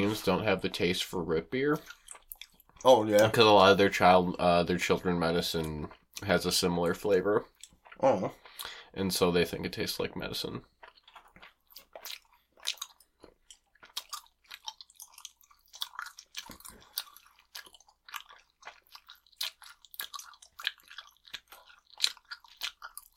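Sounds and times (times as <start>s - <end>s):
speech: 0.0s - 2.0s, 2.8s - 10.7s
wet chewing of a sticky chewy candy: 0.0s - 23.1s.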